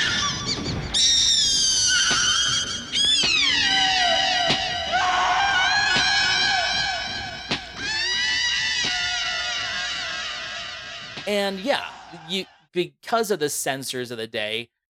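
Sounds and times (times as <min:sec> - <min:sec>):
loud piercing high-pitched shriek: 0:00.0 - 0:12.3
speech: 0:11.3 - 0:14.8.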